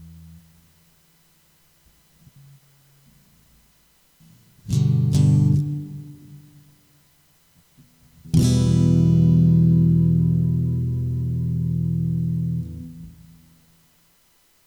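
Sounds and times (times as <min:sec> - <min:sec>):
final guitar chord: 0:04.7 - 0:06.4, 0:08.3 - 0:13.4.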